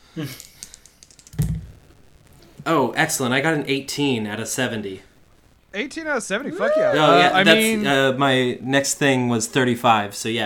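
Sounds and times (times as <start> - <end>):
speech: 0.2 - 0.5, 2.6 - 5.1, 5.7 - 10.4
dice clicking on a tabletop: 0.4 - 1.6.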